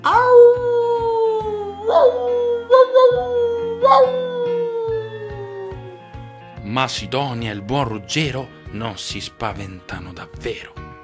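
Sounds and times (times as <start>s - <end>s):
frightening howls from a marionette puppet show character giving chase: 0.0s - 6.2s
speech: 6.8s - 10.8s.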